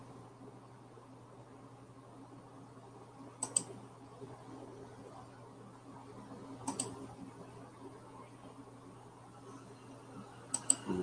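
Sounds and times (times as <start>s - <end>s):
low steady electrical hum: 0.0s - 11.0s
computer mouse clicks as open windows are closed: 3.4s - 3.8s, 6.6s - 7.1s, 10.5s - 10.9s.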